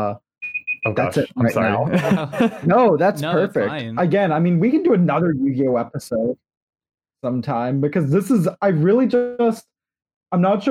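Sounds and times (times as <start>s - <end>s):
speech: 0.0s - 0.2s, 0.8s - 6.5s, 7.2s - 9.7s, 10.3s - 10.7s
high electronic beeps: 0.4s - 1.4s
laughter: 1.5s - 4.0s.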